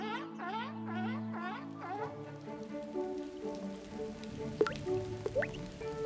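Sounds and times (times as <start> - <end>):
soft sustained musical tones: 0.0 - 6.0
rain droplets plinking and dripping outside: 2.0 - 6.0.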